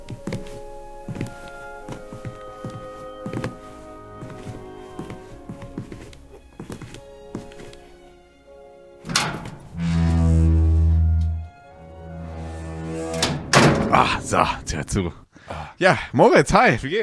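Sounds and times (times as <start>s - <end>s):
solid closing thud of a door: 9.1s - 10.2s, 13.2s - 14.0s
low droning creak: 9.1s - 13.4s
speech: 14.3s - 15.2s, 15.8s - 17.0s.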